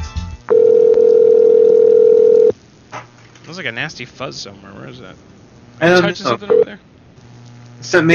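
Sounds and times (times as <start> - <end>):
telephone dial tone while calling someone: 0.5 - 2.5
speech: 3.8 - 6.9, 7.8 - 8.1.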